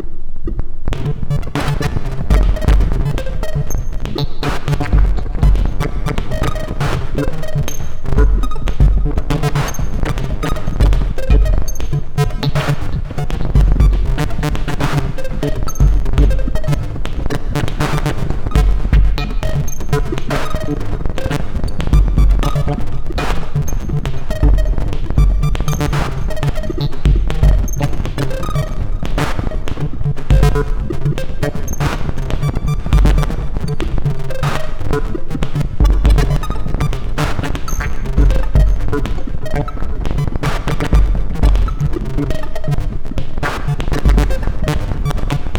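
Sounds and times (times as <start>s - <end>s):
drone beats: 0.5s - 45.5s.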